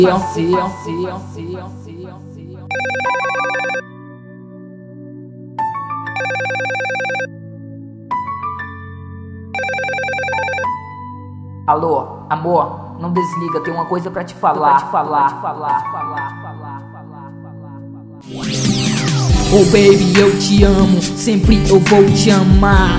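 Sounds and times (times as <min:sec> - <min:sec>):
speech: 0:00.0 - 0:03.9, 0:06.2 - 0:07.4, 0:11.7 - 0:16.4, 0:18.2 - 0:22.9
music track: 0:00.0 - 0:22.9
telephone ringing on a call: 0:02.7 - 0:03.9, 0:06.2 - 0:07.3, 0:09.6 - 0:10.9.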